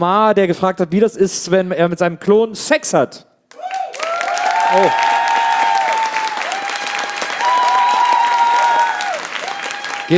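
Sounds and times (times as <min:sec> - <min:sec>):
speech: 0:00.0 - 0:03.3, 0:04.7 - 0:05.1
audience applause: 0:03.5 - 0:10.1.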